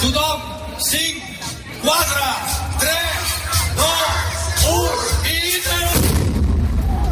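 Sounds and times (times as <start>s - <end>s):
crowd shouting and whooping excitedly: 1.0s - 7.1s
liquid nitrogen barrel exploding in an outdoor courtyard: 5.9s - 7.1s.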